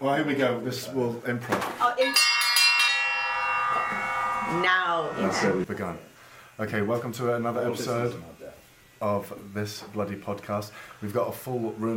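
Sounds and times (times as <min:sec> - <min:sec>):
speech: 0:00.0 - 0:02.3, 0:03.7 - 0:11.9
bright bell ringing as a jingle: 0:02.0 - 0:05.6.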